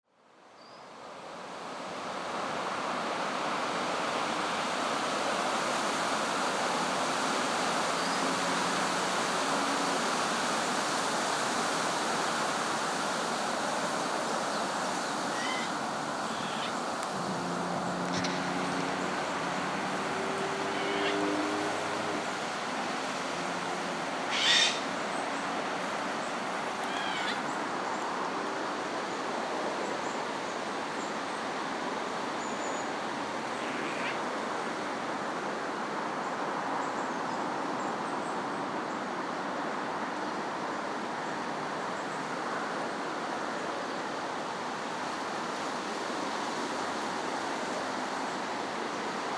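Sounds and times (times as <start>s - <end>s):
forest wind in July: 0.0s - 49.3s
jay calling: 15.2s - 16.9s, 18.1s - 18.8s, 20.6s - 21.5s, 24.2s - 25.0s, 26.7s - 27.6s.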